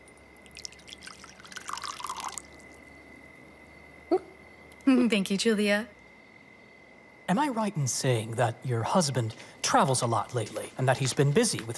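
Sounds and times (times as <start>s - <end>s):
tea pouring into a cup: 0.1s - 2.8s
speech: 4.9s - 6.0s, 7.3s - 11.7s.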